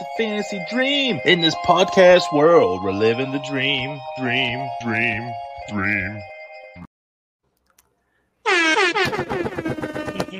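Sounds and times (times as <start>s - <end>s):
speech: 0.2s - 6.3s
loud blaring air horn: 8.5s - 9.2s.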